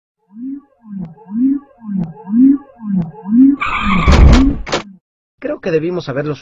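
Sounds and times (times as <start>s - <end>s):
car tires squealing in a sudden skid: 3.4s - 4.5s
speech: 5.6s - 6.4s.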